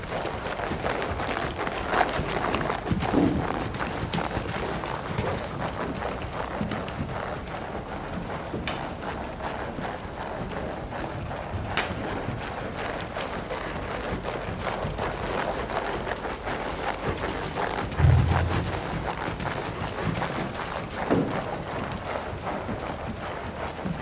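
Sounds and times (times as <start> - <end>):
horses' hoofbeats in a riding school: 0.0 - 24.0
steady background noise: 0.0 - 24.0.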